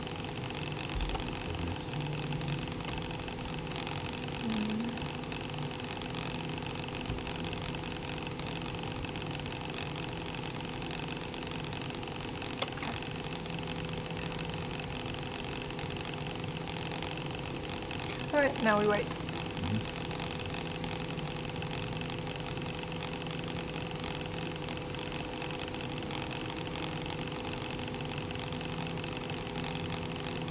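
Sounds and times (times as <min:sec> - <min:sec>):
pump running: 0:00.0 - 0:29.8
speech: 0:18.4 - 0:19.2.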